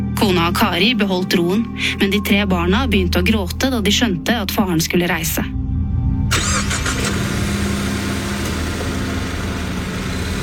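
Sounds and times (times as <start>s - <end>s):
speech: 0.2s - 5.6s
car engine cranking and catching: 6.3s - 10.4s.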